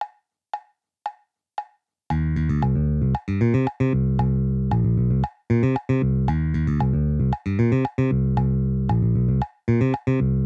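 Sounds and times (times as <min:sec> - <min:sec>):
instrumental jam: 0:02.1 - 0:10.4.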